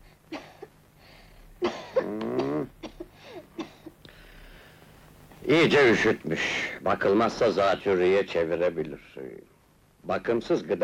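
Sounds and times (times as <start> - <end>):
child coughing harshly and wheezily during a doctor's examination: 1.6 - 3.9
speech: 5.5 - 9.5, 10.1 - 10.8.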